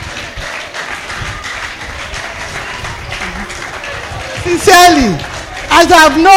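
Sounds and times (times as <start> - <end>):
audience clapping for a pastor: 0.0 - 6.3
speech: 4.5 - 6.3.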